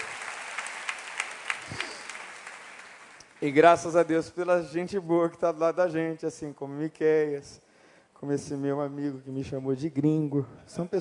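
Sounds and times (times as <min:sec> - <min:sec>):
audience applauding in a large room: 0:00.0 - 0:03.6
speech: 0:03.4 - 0:07.6, 0:08.2 - 0:10.9.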